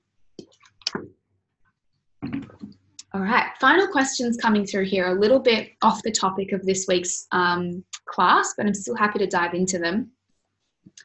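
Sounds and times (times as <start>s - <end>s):
person sipping and gulping water: 2.2s - 2.7s
speech: 3.1s - 10.2s.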